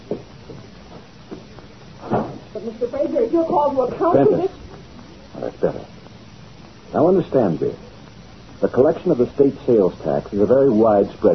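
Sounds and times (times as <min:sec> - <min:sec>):
soft knocks and shuffles: 0:00.0 - 0:02.5
door swinging shut with a muffled thud: 0:02.0 - 0:02.5
speech: 0:02.6 - 0:04.6, 0:05.5 - 0:06.0, 0:06.9 - 0:07.9, 0:08.6 - 0:11.3.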